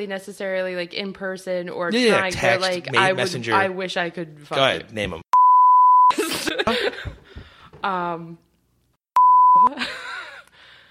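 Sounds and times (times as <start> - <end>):
speech: 0.0 - 5.2, 6.6 - 7.2, 7.8 - 8.4
lively conversation: 0.0 - 5.5
short sharp censor beeps over spoken words: 5.4 - 6.1, 9.2 - 9.8.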